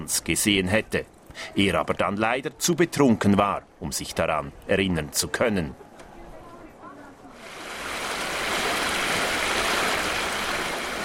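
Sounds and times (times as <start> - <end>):
speech: 0.0 - 5.8
rushing water of a partly frozen creek: 7.3 - 11.0.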